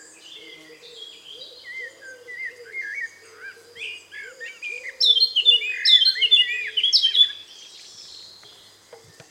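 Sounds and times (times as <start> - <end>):
Eurasian blackcap Sylvia atricapilla singing: 4.4 - 9.2.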